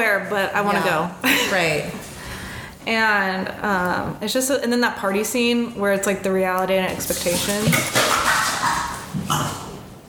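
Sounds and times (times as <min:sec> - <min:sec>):
speech: 0:00.0 - 0:02.1, 0:02.8 - 0:08.0
dogs barking: 0:07.9 - 0:09.7.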